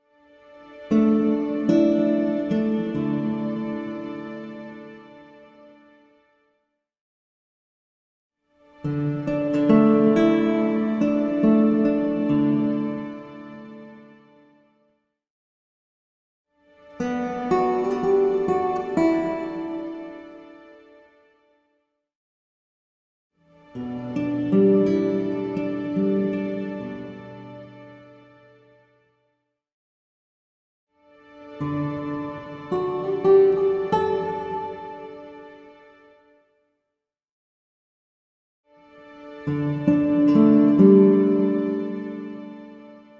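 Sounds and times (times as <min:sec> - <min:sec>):
string pad: 0:00.1 - 0:06.2, 0:08.7 - 0:14.4, 0:16.8 - 0:21.0, 0:23.5 - 0:28.6, 0:31.1 - 0:36.2, 0:38.9 - 0:43.1
slow classical guitar music logo: 0:00.4 - 0:05.5, 0:08.8 - 0:14.3, 0:16.9 - 0:20.8, 0:23.6 - 0:28.6, 0:31.4 - 0:36.0, 0:39.4 - 0:43.1.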